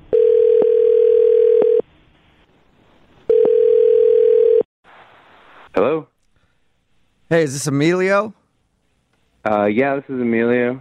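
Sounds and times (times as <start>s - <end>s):
phone line ringback tone: 0.1s - 1.8s, 3.3s - 4.7s
speech: 7.3s - 8.4s, 9.4s - 10.7s.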